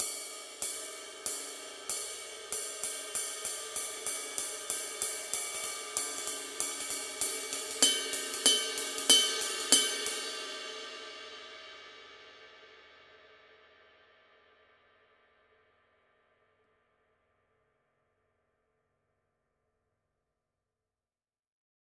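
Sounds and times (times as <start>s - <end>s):
22 inch thin crash cymbal pattern: 0.0s - 12.7s.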